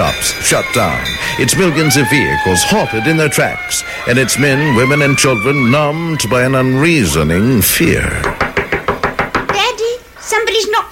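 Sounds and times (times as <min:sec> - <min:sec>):
speech: 0:00.2 - 0:08.4, 0:10.3 - 0:10.9
firm knocking on a door: 0:08.2 - 0:09.7.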